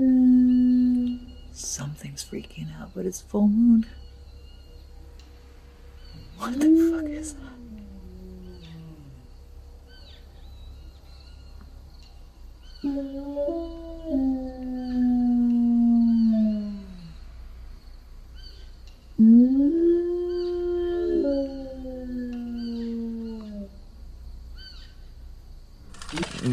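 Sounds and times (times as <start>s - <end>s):
long eerie moo-like howls sliding downward in pitch: 0.0s - 1.5s, 6.2s - 9.4s, 12.8s - 17.3s, 19.2s - 23.9s
speech: 1.6s - 4.0s, 6.4s - 7.6s, 12.8s - 14.3s.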